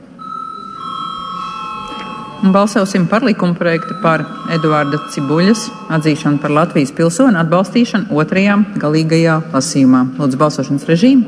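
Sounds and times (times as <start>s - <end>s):
electronic bell ringing in parliament to call a vote: 0.0s - 8.1s
speech: 2.4s - 11.2s.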